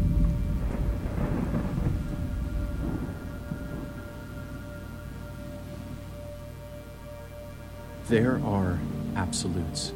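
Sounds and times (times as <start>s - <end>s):
deep rolling thunder of a thunderstorm: 0.0s - 6.5s
steady rain hissing: 0.0s - 9.9s
speech: 8.1s - 9.9s.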